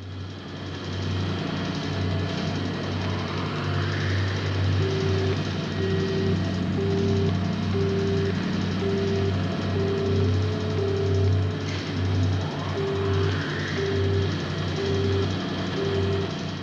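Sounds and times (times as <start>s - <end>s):
steady low electronic hum: 0.0s - 16.6s
evenly spaced short beeps: 4.8s - 11.6s, 12.7s - 16.4s.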